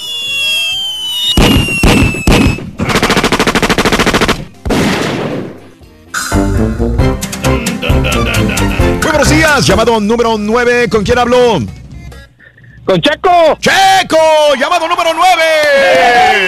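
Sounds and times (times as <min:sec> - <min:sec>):
whistling ricochet-like sweeps: 0:00.0 - 0:02.8
rapid bursts of automatic fire: 0:01.4 - 0:05.2
gunshot sound effects: 0:01.4 - 0:05.7
laughter: 0:07.4 - 0:09.4
speech: 0:09.2 - 0:11.8, 0:12.8 - 0:16.4.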